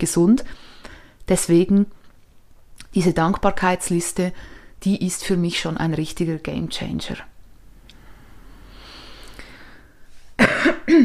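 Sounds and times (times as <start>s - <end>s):
speech: 0.0s - 0.7s, 1.3s - 2.0s, 2.9s - 7.3s
ill person clearing throat in rough bursts: 10.4s - 11.0s.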